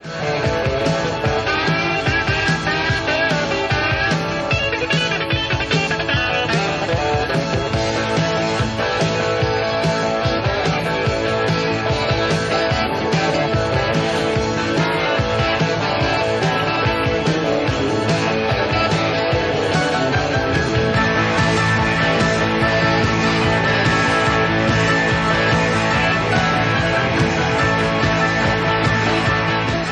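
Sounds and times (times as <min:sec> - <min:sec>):
black 1980 Telecaster-style electric guitar played live: 0:00.0 - 0:29.9.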